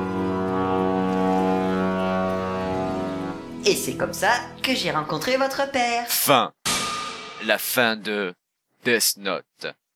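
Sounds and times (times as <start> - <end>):
ship's foghorn long deep blast: 0.0 - 4.6
speech: 3.6 - 6.6, 7.4 - 9.8.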